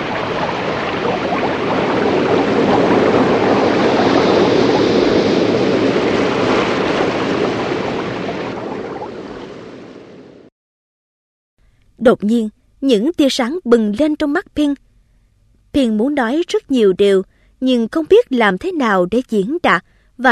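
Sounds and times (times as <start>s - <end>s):
river roaring: 0.0s - 10.5s
speech: 12.1s - 14.8s, 15.7s - 20.3s.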